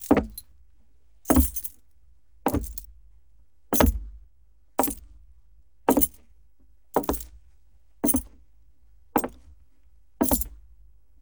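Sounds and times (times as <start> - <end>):
keys jingling while pacing: 0.0 - 0.4, 1.3 - 1.8, 2.5 - 2.9, 4.8 - 5.0, 5.9 - 6.2, 7.0 - 7.3, 8.0 - 8.2, 10.2 - 10.4.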